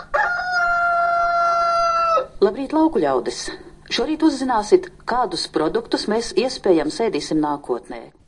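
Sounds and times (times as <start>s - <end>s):
rooster crowing: 0.0s - 2.4s
speech: 2.4s - 8.2s.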